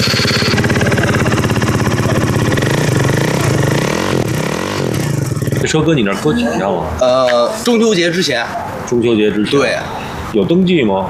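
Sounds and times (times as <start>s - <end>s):
motorcycle with modified exhaust revving: 0.0s - 6.0s
speech: 5.7s - 11.0s.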